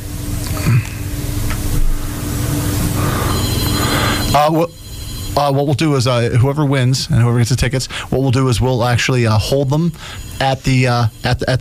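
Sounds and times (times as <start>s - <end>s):
noisy hum: 0.0s - 11.5s
telephone ringing with a steady electronic trill: 2.9s - 6.1s, 9.1s - 11.5s
speech: 4.4s - 4.8s, 5.4s - 11.5s.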